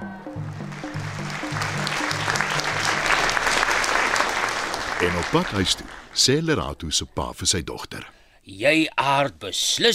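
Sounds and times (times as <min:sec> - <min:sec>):
loud applause from a large crowd at end of concert: 0:00.0 - 0:06.2
speech: 0:05.0 - 0:09.9.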